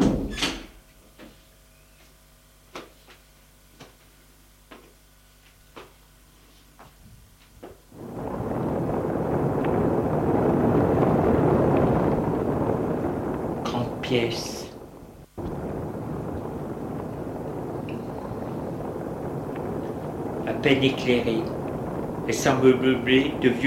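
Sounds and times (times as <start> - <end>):
door clicks and creaks: 0.0 - 0.8
steady rushing noise: 7.9 - 23.6
speech: 14.1 - 14.5, 20.6 - 21.6, 22.3 - 23.6.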